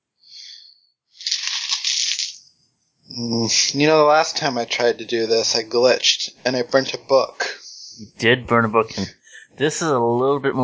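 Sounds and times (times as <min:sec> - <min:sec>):
two dice rolled during a tabletop game: 0:01.2 - 0:02.4
speech: 0:03.2 - 0:07.4, 0:08.0 - 0:10.6.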